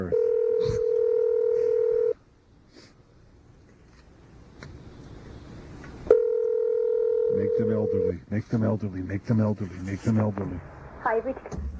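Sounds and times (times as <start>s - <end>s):
steady electronic telephone dialing tone: 0.1s - 2.2s, 6.1s - 8.1s
speech: 8.4s - 11.7s.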